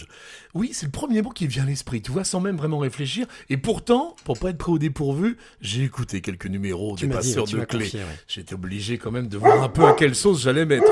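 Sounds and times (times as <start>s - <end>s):
speech: 0.0s - 10.9s
house guard dog barking: 9.4s - 10.9s.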